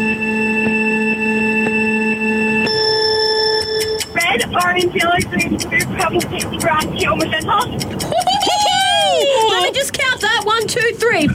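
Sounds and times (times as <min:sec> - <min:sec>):
game-show style electronic countdown tone with short beeps: 0:00.0 - 0:04.3
speech: 0:04.8 - 0:08.7, 0:09.5 - 0:11.3
laughter: 0:07.7 - 0:10.2.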